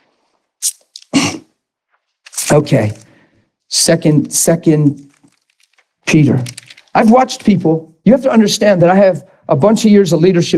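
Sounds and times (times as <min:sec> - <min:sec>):
person sneezing: 0:00.6 - 0:01.6
speech: 0:02.5 - 0:03.0, 0:03.7 - 0:05.1, 0:06.1 - 0:10.5.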